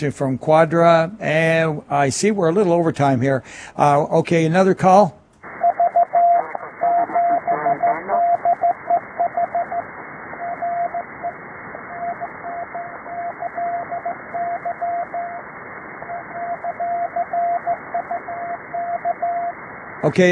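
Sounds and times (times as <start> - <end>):
speech: 0.0 - 5.2
hissy band-limited radio channel: 5.4 - 18.0
Morse code CW tone over a radio channel: 5.6 - 15.4, 16.0 - 19.6.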